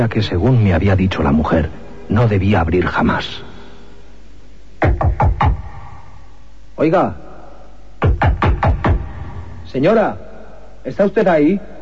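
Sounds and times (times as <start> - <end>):
speech: 0.0 - 3.5, 6.8 - 7.2, 9.7 - 11.7
firm knocks on a door: 8.0 - 9.1.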